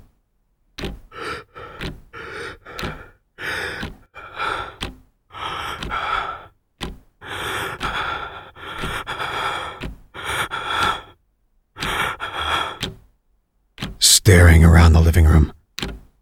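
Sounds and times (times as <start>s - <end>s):
person gasping for breath: 1.1s - 6.6s, 7.2s - 11.2s, 11.8s - 13.0s
speech: 14.6s - 15.6s.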